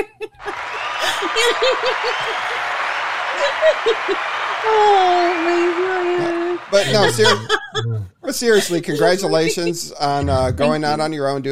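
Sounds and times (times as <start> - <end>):
laughter: 0.0 - 10.8
crowd applause clapping: 0.3 - 8.0
cheering and whooping voices: 0.3 - 8.1
speech: 1.4 - 2.7, 3.4 - 11.5.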